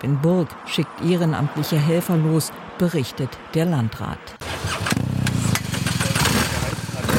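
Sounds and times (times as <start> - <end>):
speech: 0.0 - 5.0
motorcycle engine chugging: 4.4 - 7.1.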